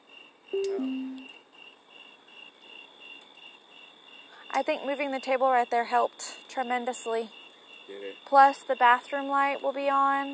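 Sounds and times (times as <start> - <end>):
crickets chirping at night: 0.0 - 10.3
speech: 0.5 - 1.2, 4.5 - 10.3
brief low tonal sound: 0.6 - 1.3.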